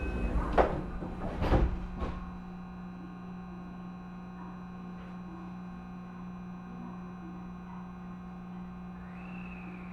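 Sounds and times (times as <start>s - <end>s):
Kyoto-bound JR train doors sliding shut before departure: 0.0s - 2.6s
low steady rumble of the train carriage: 0.0s - 3.3s.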